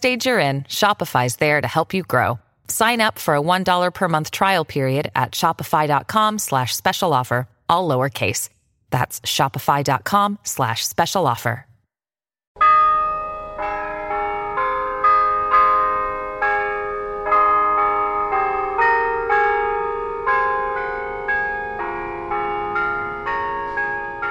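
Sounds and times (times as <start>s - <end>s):
speech: 0.0s - 11.7s
church bells chiming from a church spire in Yorktown Heights: 12.6s - 24.2s.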